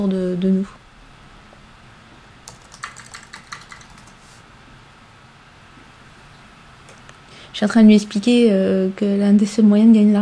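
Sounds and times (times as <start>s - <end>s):
speech: 0.0s - 0.8s, 7.6s - 10.2s
quiet hum: 0.0s - 10.2s
typing on a computer keyboard: 2.5s - 4.2s.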